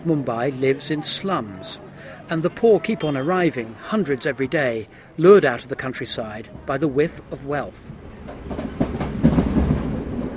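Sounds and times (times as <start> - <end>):
speech: 0.0 - 8.6
Mumbai commuter train running along the track: 0.0 - 10.3
rhythmic clickety-clack train wheel beats: 8.2 - 10.3.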